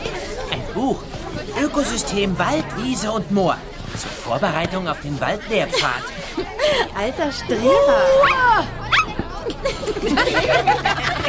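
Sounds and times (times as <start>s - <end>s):
speech: 0.8s - 8.7s, 9.6s - 11.2s
laughter: 5.4s - 11.2s
dog in a basket barking with high yips and yelps: 8.3s - 9.2s.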